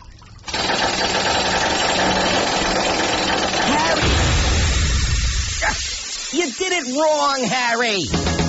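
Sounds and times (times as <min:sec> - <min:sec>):
jackhammer pounding: 0:00.5 - 0:04.8
speech: 0:06.4 - 0:08.3.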